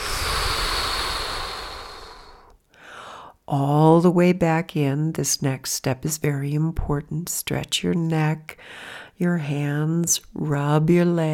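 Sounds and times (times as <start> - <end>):
deep inhale and exhale through the mouth during a guided relaxation: 0.0 - 3.4
speech: 3.5 - 11.3.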